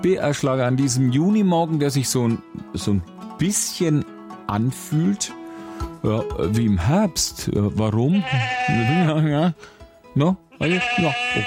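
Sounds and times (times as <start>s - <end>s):
speech: 0.0s - 11.4s
sheep bleating: 8.1s - 9.3s, 10.5s - 11.4s.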